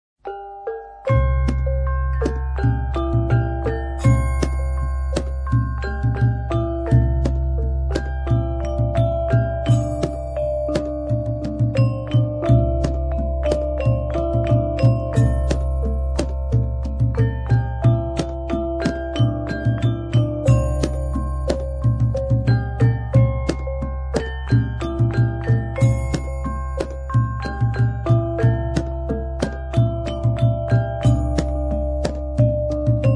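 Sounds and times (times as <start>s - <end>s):
gamelan music: 0.2s - 33.1s.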